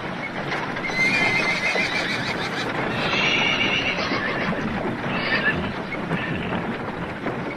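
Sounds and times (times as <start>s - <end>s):
horse hooves clip-clopping: 0.0s - 7.5s
rumble of horse-drawn cart wheels: 0.0s - 7.5s
horse whinnying: 0.9s - 6.6s.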